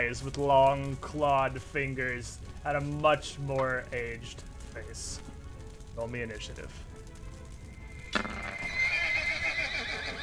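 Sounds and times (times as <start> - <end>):
faint clatter of hooves: 0.0 - 10.2
speech: 0.1 - 5.3, 6.0 - 6.9
agitated horse neighing and whinnying: 8.1 - 10.2.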